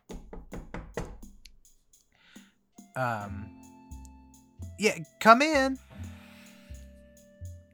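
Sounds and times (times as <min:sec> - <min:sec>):
loud heavy knocking on a door: 0:00.1 - 0:01.2
speech: 0:03.0 - 0:03.6, 0:04.8 - 0:05.9.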